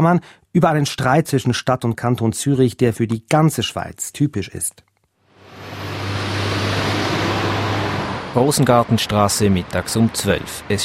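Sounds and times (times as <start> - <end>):
speech: 0.0 - 4.9, 8.4 - 10.8
low hum: 5.3 - 8.4
dense road traffic crawling downhill on a city street in Zurich: 5.3 - 10.8.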